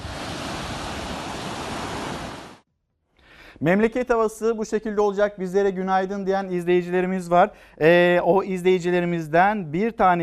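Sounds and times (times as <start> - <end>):
sea waves crashing on the shore at Alanya, Antalya, Turkey in cold rainy weather: 0.0 - 2.6
speech: 3.6 - 10.2.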